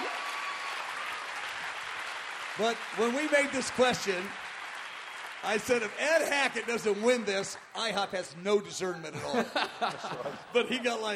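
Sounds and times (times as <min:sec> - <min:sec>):
audience applause after award winners are announced: 0:00.0 - 0:08.1
speech: 0:02.6 - 0:04.4, 0:05.4 - 0:11.1
laughter: 0:09.1 - 0:11.1.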